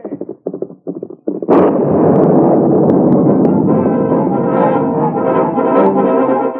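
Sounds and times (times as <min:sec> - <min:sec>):
crackling debris: 0:01.3 - 0:05.9
loud explosion with heavy rumbling roar: 0:01.4 - 0:06.4.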